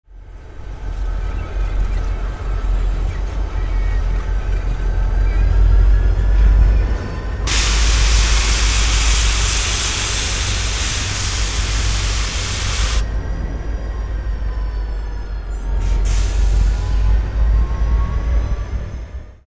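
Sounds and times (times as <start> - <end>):
freight train: 0.1 - 19.4.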